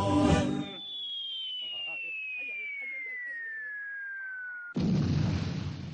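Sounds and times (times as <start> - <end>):
high whistling tone of a falling bomb: 0.1 - 4.8
bomb exploding in a military battle scene: 4.7 - 5.9.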